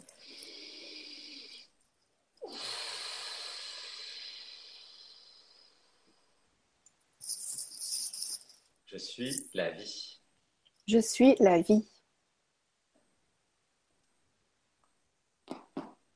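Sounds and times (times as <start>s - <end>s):
slow deep breath with breathy inhale and airy exhale: 0.0s - 1.7s, 2.4s - 6.4s
speech: 8.9s - 10.2s, 10.9s - 11.9s.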